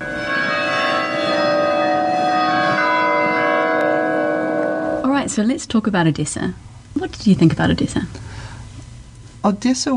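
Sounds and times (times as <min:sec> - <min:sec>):
church bells ringing in Odessa: 0:00.0 - 0:05.6
steady bright hum: 0:00.0 - 0:09.9
speech: 0:05.4 - 0:08.3, 0:09.4 - 0:09.9.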